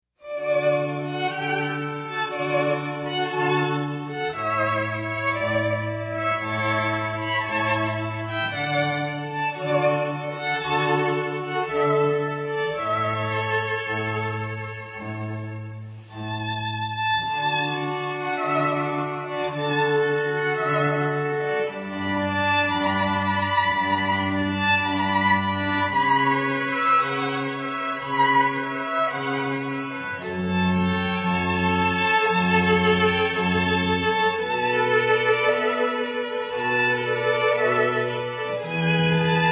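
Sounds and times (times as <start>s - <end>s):
string quartet: 0.2s - 39.5s.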